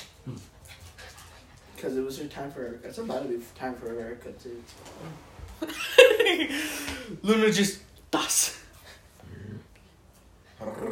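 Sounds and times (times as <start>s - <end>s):
two dogs growling before a fight: 0.0s - 0.8s, 9.2s - 9.9s, 10.5s - 10.8s
speech: 0.2s - 0.5s, 1.8s - 8.6s.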